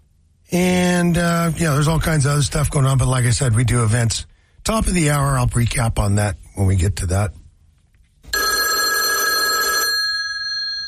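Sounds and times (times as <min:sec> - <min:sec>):
speech: 0:00.5 - 0:07.4
old-fashioned telephone bell ringing: 0:08.3 - 0:10.8.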